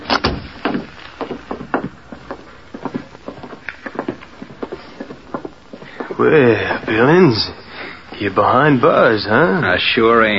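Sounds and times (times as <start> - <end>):
door thudding shut: 0.0 - 0.6
footsteps tapping down a hallway on a hard floor: 0.0 - 7.4
speech: 6.2 - 7.6, 8.2 - 10.3.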